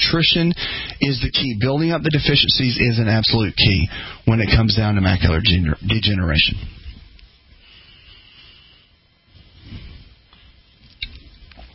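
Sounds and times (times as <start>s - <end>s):
speech: 0.1s - 6.8s
person drinking water: 10.4s - 11.7s.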